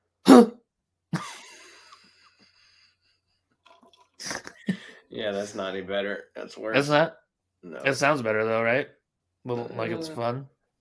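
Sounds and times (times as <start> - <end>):
person clearing throat in an exaggerated imitation: 0.3 - 0.6
speech: 0.4 - 0.6, 5.2 - 10.5.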